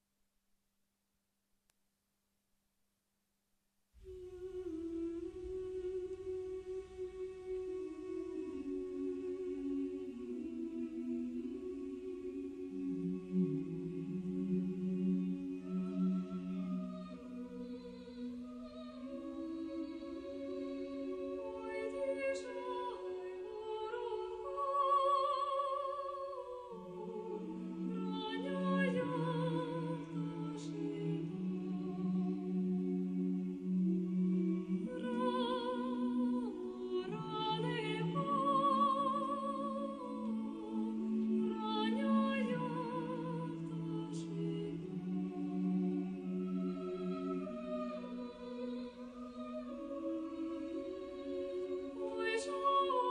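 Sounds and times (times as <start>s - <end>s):
Ukrainian song singing: 4.0s - 53.1s.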